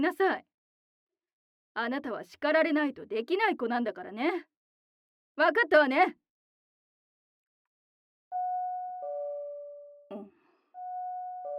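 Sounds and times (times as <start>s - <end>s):
speech: 0.0s - 0.5s, 1.8s - 4.5s, 5.4s - 6.2s
two-note electronic house doorbell chime: 8.3s - 10.1s, 10.8s - 11.5s.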